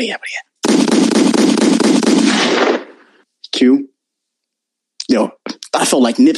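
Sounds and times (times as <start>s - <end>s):
speech: 0.0s - 0.5s, 3.6s - 3.9s, 5.1s - 6.3s
rapid gunshot sound effects: 0.6s - 3.2s.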